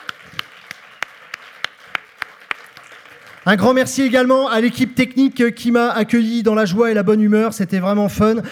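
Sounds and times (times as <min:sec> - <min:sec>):
crowd applauding: 0:00.0 - 0:04.2
speech: 0:03.4 - 0:08.5.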